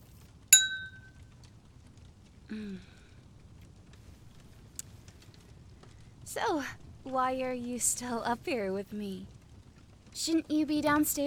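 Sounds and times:
champagne glasses clinking in a toast: 0:00.6 - 0:01.1
speech: 0:02.5 - 0:03.0, 0:06.3 - 0:09.4, 0:10.2 - 0:11.2.

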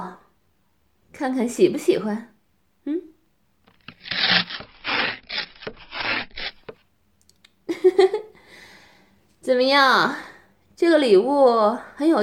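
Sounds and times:
speech: 0:01.1 - 0:03.1, 0:09.5 - 0:12.2
delivered parcel packaging being torn open: 0:03.7 - 0:06.8.

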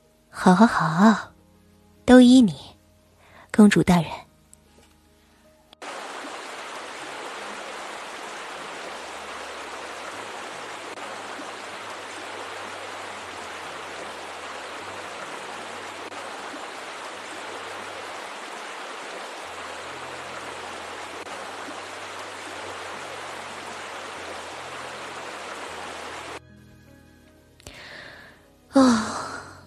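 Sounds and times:
speech: 0:00.4 - 0:01.3, 0:02.1 - 0:02.7, 0:03.6 - 0:04.2
hot shower water running: 0:05.8 - 0:26.4.

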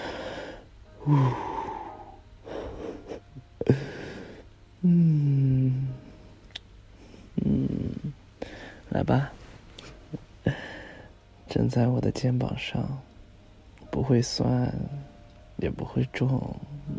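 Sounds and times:
slow breathing: 0:00.0 - 0:06.3, 0:06.9 - 0:08.9, 0:09.8 - 0:11.2
speech: 0:01.0 - 0:01.5, 0:04.8 - 0:05.3, 0:09.0 - 0:09.4, 0:11.7 - 0:13.1, 0:14.0 - 0:16.9.

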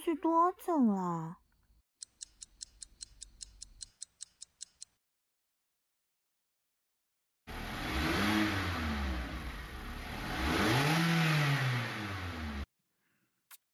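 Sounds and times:
speech: 0:00.1 - 0:01.4
quick ticks: 0:02.0 - 0:05.0
car engine revving and accelerating after traffic jam: 0:07.5 - 0:12.7.

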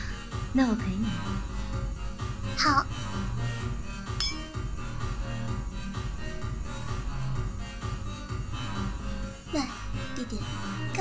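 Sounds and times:
thumping music: 0:00.3 - 0:10.4
speech: 0:00.5 - 0:01.6, 0:02.6 - 0:03.5, 0:09.5 - 0:10.9
drinking glasses clinking in a toast: 0:04.2 - 0:04.6.

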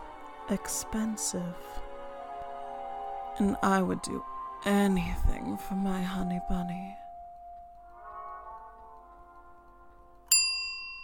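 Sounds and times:
speech: 0:00.5 - 0:01.8, 0:03.4 - 0:07.0
moving lift humming: 0:01.8 - 0:10.3
elevator arrival bell chime: 0:02.6 - 0:11.0.

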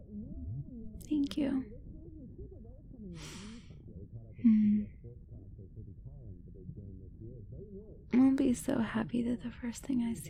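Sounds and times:
speech: 0:01.0 - 0:01.8, 0:07.4 - 0:10.2
person yawning with a soft hum: 0:04.4 - 0:04.8.

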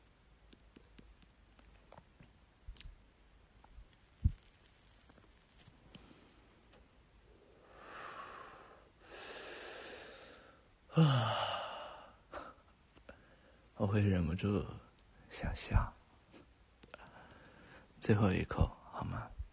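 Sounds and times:
tobacco burning while someone smokes: 0:00.3 - 0:06.0
soft drawn-out breaths while smoking: 0:05.8 - 0:13.8, 0:16.2 - 0:18.0
speech: 0:11.0 - 0:11.4, 0:13.8 - 0:14.8, 0:15.4 - 0:16.0, 0:18.0 - 0:19.4.

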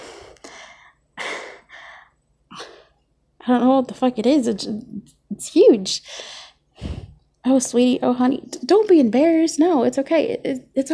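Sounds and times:
person breathing hard: 0:00.0 - 0:03.0, 0:06.0 - 0:07.2
speech: 0:03.4 - 0:06.4, 0:07.4 - 0:10.9.

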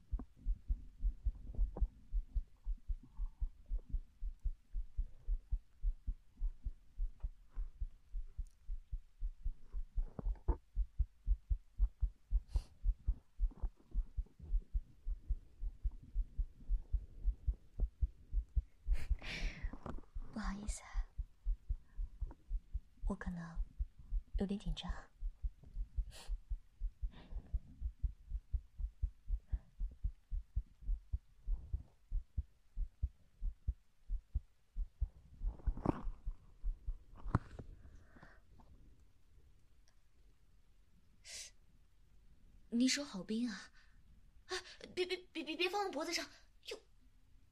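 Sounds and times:
heartbeat thumping: 0:00.0 - 0:37.4
speech: 0:23.1 - 0:23.7, 0:24.4 - 0:25.1, 0:26.1 - 0:26.3, 0:42.8 - 0:43.8, 0:46.0 - 0:46.8.

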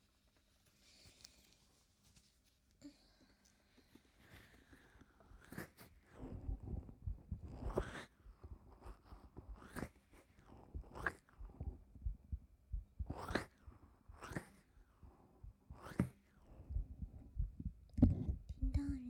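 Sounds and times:
soft heartbeat heard against a chest: 0:06.2 - 0:07.8, 0:10.6 - 0:13.4, 0:15.4 - 0:15.8, 0:16.6 - 0:19.0.

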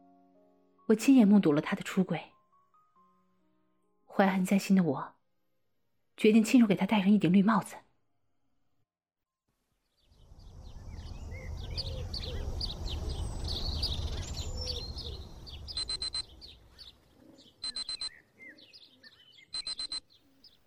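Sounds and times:
speech: 0:00.9 - 0:02.3, 0:04.2 - 0:05.2, 0:06.2 - 0:07.8
morning birdsong chirps and coos: 0:09.8 - 0:20.6
alarm clock buzzing: 0:15.8 - 0:16.3, 0:17.6 - 0:18.1, 0:19.6 - 0:20.0.

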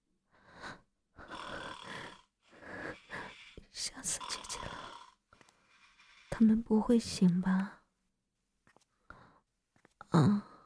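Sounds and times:
sleeping father snoring loudly: 0:01.2 - 0:05.2
speech: 0:06.4 - 0:07.8.

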